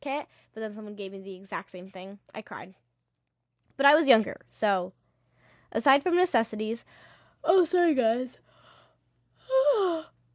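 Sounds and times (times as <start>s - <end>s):
speech: 0.0s - 2.8s, 3.8s - 5.0s, 5.7s - 8.4s
person yawning: 9.4s - 10.2s.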